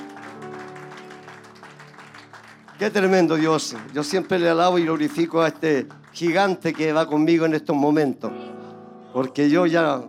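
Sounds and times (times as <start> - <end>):
crowd applauding to the Lord: 0.0 - 7.6
speech: 2.8 - 8.4, 9.2 - 10.0.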